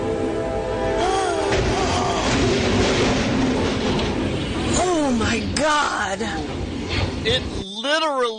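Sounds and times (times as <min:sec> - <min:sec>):
train roaring along: 0:00.0 - 0:07.6
crashing grinding clatter of train colliding with diesel crane truck: 0:01.5 - 0:07.4
speech: 0:07.2 - 0:08.3.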